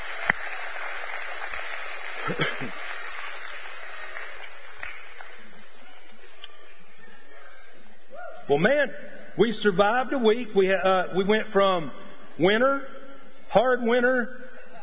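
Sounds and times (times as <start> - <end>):
large crowd applauding: 0.0 - 6.3
speech: 2.3 - 2.9, 8.5 - 12.9, 13.5 - 14.4.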